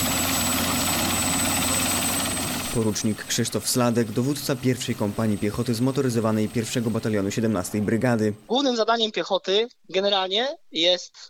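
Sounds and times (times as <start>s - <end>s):
military helicopter rotor and engine roar during army training: 0.0s - 7.9s
speech: 2.8s - 11.2s.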